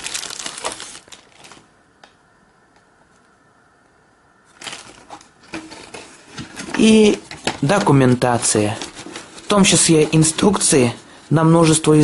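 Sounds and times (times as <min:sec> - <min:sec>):
plastic bag crinkling while a digital voice recorder is unpacked: 0:00.0 - 0:01.8, 0:04.5 - 0:11.2
speech: 0:06.8 - 0:08.9, 0:09.5 - 0:12.0.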